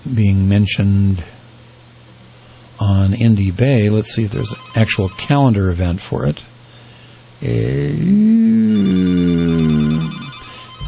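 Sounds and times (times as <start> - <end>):
speech: 0.1 - 1.4, 2.8 - 6.5, 7.4 - 9.2
telephone ringing at a radio station: 4.3 - 5.8, 8.6 - 10.8.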